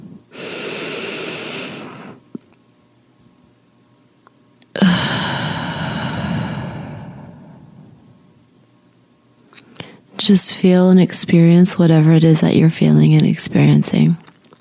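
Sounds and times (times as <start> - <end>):
slow deep breath during a guided breathing exercise: 0.3 - 2.2, 4.8 - 8.2
speech: 10.3 - 14.3.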